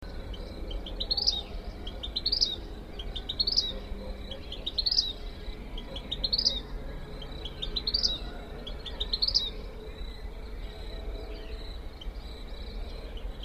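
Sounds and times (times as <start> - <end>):
Vermilion Flycatcher Pyrocephalus rubinus singing: 0.0 - 13.4.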